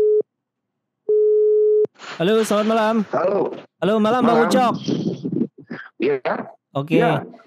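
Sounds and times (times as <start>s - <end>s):
phone ringback tone: 1.1s - 1.9s
speech: 2.2s - 5.3s, 6.0s - 7.4s.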